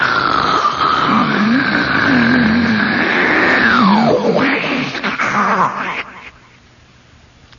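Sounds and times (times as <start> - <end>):
voice imitating the sea rushing out of a sea cliff hollow: 0.0 - 6.4.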